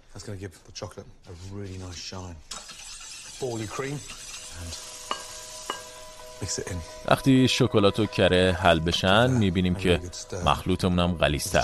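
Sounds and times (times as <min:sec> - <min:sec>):
speech: 0:00.2 - 0:02.7, 0:03.4 - 0:04.9, 0:06.4 - 0:11.6
heavy cream and honey stirred in a deep pan: 0:02.6 - 0:07.0.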